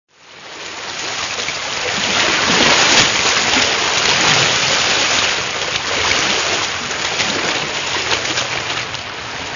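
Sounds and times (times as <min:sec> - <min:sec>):
liquid water noise: 0:00.1 - 0:09.5.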